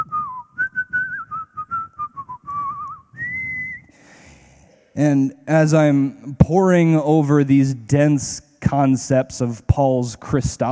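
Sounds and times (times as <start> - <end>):
person whistling a wandering melodic tune: 0.0 - 3.9
speech: 5.0 - 10.7.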